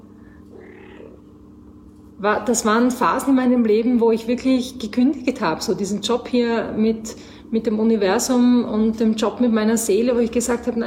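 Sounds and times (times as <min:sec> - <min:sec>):
cat purring: 0:00.2 - 0:01.3
soft meow-like call of a cat: 0:00.5 - 0:01.2
speech: 0:02.2 - 0:10.8.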